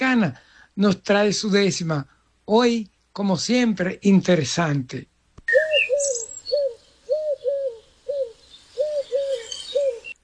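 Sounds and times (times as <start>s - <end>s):
speech: 0.1s - 5.1s
faint chirps from other birds: 5.5s - 10.2s
turtle dove cooing: 5.5s - 10.2s.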